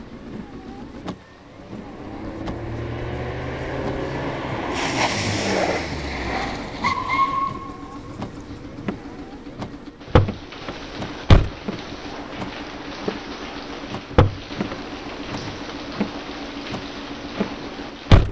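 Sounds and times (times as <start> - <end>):
Ford Anglia car engine rumbling: 0.0 - 18.3
car brakes squealing: 0.0 - 18.3.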